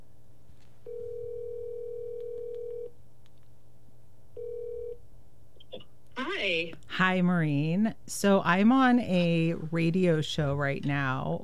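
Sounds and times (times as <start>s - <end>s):
telephone ringing tone through the line: 0.9s - 2.9s, 4.4s - 5.0s
speech: 6.4s - 11.4s.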